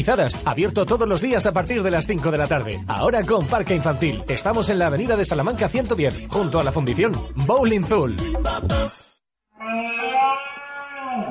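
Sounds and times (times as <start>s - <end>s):
speech: 0.0s - 9.0s
red deer stag rutting bellow: 9.6s - 11.2s.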